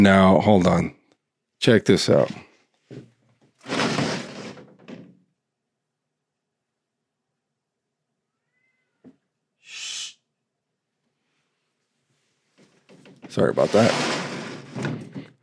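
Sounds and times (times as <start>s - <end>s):
speech: 0.0s - 1.0s, 1.6s - 3.1s, 13.3s - 14.2s
cat yowling meow: 8.2s - 9.0s
hissing scraping noise: 13.4s - 15.0s.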